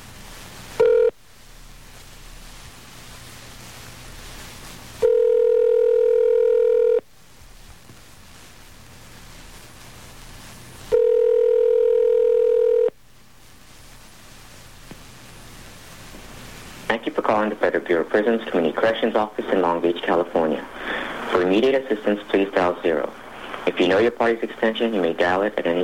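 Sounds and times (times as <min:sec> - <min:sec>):
quiet telephone line hiss: 0:00.0 - 0:05.4, 0:07.1 - 0:11.2, 0:13.0 - 0:25.8
telephone line tones during a call: 0:00.8 - 0:01.2, 0:05.0 - 0:07.0, 0:10.9 - 0:13.0
speech: 0:17.1 - 0:25.8.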